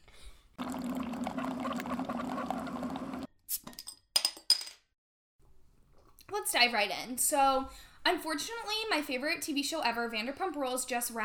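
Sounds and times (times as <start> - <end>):
wine glugging into a glass: 0.6 - 3.3
speech: 6.4 - 11.2.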